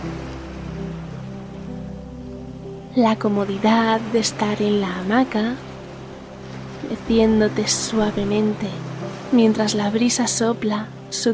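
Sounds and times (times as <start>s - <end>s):
ocean waves: 0.0s - 11.3s
speech: 3.0s - 5.7s, 6.9s - 11.3s.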